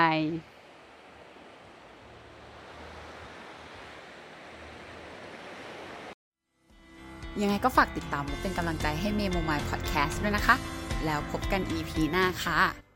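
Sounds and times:
speech: 0.0s - 0.5s, 7.4s - 12.8s
ocean waves breaking on a shore: 0.0s - 6.2s.

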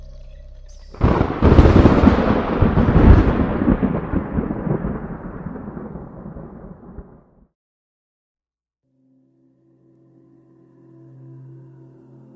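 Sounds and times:
crack of thunder rolling into a deep rumble: 1.0s - 7.5s.

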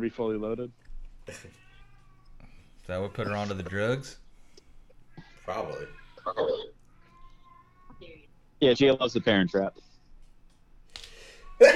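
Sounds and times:
speech: 0.0s - 1.7s, 2.9s - 4.2s, 5.5s - 6.7s, 8.0s - 9.9s, 11.6s - 11.7s
breathy building inhale before a sneeze: 11.0s - 11.6s
person sneezing a big sneeze: 11.6s - 11.7s.

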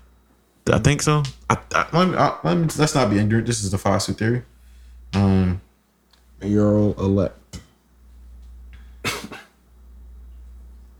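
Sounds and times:
low steady hum: 0.0s - 10.9s
speech: 0.7s - 4.5s, 5.1s - 5.6s, 6.4s - 7.4s
person coughing: 9.0s - 9.6s.

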